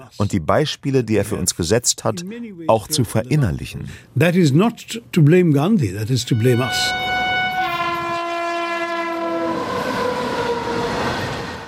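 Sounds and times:
speech: 0.1s - 7.1s
train horn at a railway station in Gujarat, western India: 6.2s - 11.6s.

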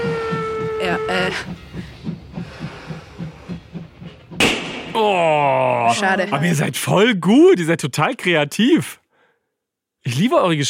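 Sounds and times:
train whistle shrieking: 0.0s - 1.8s
passing train chugging rhythmically: 0.0s - 9.1s
speech: 0.8s - 1.9s, 5.0s - 9.0s, 10.0s - 10.6s.

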